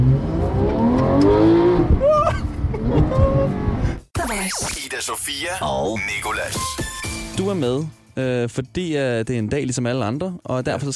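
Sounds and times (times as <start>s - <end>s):
car engine accelerating while driving: 0.0s - 4.0s
speech: 4.5s - 10.9s.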